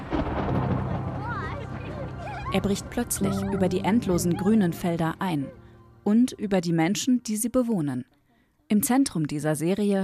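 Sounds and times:
rumbling thunder of an approaching storm: 0.0s - 5.1s
wavering tonal sound: 1.6s - 6.3s
speech: 2.5s - 10.0s.

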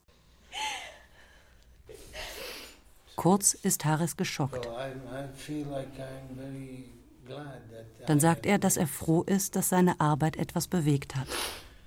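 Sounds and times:
woman sobbing: 0.5s - 1.2s
speech: 3.2s - 11.6s.

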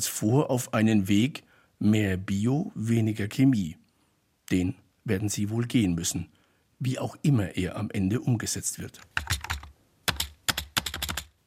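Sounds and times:
speech: 0.0s - 3.8s, 4.5s - 9.4s
computer keyboard typing: 9.0s - 11.4s.

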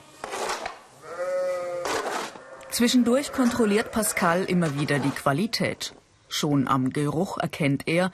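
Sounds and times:
sheep bleating: 1.0s - 4.6s
speech: 2.8s - 8.1s.

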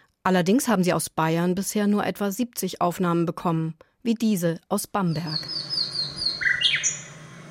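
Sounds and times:
speech: 0.2s - 5.7s
nightingale singing in Bamberg Bavaria: 5.1s - 7.3s.

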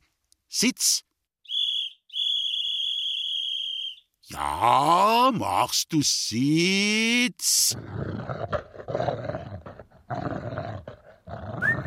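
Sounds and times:
speech: 0.5s - 1.1s, 4.3s - 9.1s
small dog training whistle blown: 1.4s - 4.1s.

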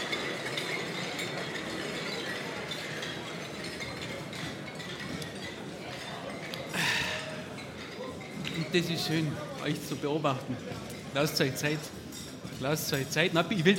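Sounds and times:
busy murmur of people chatting: 0.0s - 13.7s
glasses clinking together in a toast: 0.0s - 13.7s
speech: 8.7s - 12.0s, 12.6s - 13.7s.

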